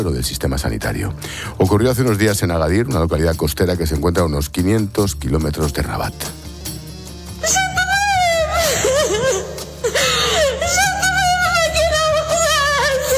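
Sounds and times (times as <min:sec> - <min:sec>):
speech: 0:00.0 - 0:06.5
pregnant woman crying and wailing for help in a hospital in Agadir Morocco: 0:07.4 - 0:13.1.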